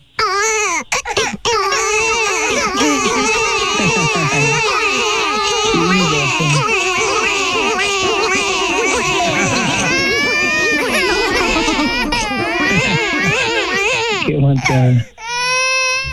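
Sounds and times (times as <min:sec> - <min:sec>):
many children crying and wailing loudly together: 0:00.2 - 0:16.1
laughter: 0:01.2 - 0:16.1.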